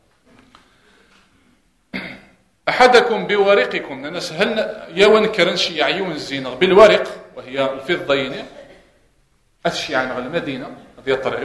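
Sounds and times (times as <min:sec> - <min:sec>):
sharp cough: 0:01.9 - 0:02.4, 0:08.4 - 0:09.2
speech: 0:02.8 - 0:08.6, 0:09.6 - 0:11.4.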